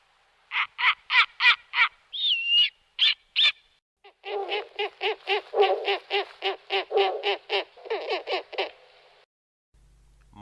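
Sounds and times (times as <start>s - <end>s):
snowy owl calling: 0.5s - 8.7s.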